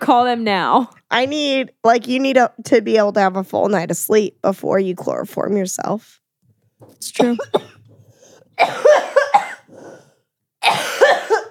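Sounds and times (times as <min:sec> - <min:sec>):
speech: 0:00.1 - 0:06.2, 0:06.8 - 0:07.8, 0:08.6 - 0:09.0
harsh coughing: 0:07.0 - 0:11.4.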